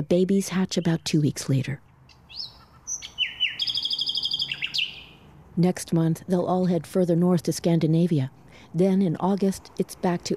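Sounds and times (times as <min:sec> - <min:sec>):
speech: 0:00.0 - 0:01.8, 0:05.6 - 0:10.3
male nightingale singing: 0:00.5 - 0:05.3.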